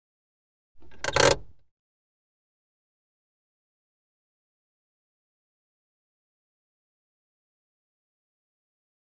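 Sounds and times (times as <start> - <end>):
automatic car handbrake being applied inside car interior: 0.8 - 1.6.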